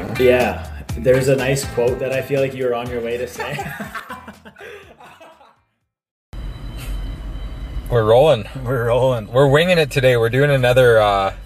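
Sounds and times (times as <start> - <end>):
speech: 0.2 - 4.0, 7.9 - 11.4
person laughing: 3.3 - 5.6.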